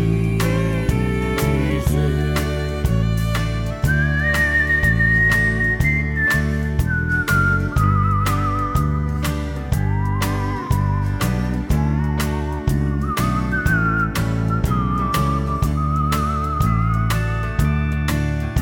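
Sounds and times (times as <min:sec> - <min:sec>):
steady instrumental backing with a regular rhythmic pulse: 0:00.0 - 0:18.6
woman whistling a slow wavering hymn-like melody: 0:03.8 - 0:18.0.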